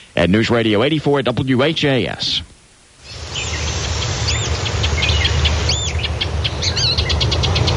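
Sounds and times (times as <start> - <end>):
hiss: 0.0 - 7.7
speech: 0.2 - 2.5
songbird, probably a pine warbler, calling in arching notes and trill: 3.0 - 7.7
engine rumble: 3.1 - 7.7.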